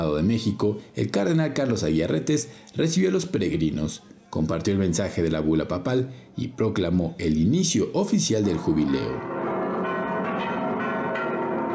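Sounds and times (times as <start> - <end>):
speech: 0.0 - 9.4
cathedral church bells ringing in unison at the opening of a jubilee: 8.4 - 11.7.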